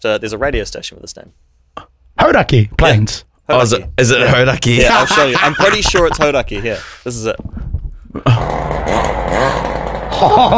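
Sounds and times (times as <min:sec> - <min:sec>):
speech: 0:00.0 - 0:10.5
laughter: 0:04.2 - 0:07.0, 0:10.1 - 0:10.5
vehicle engine revving near a petrol station: 0:08.3 - 0:10.5.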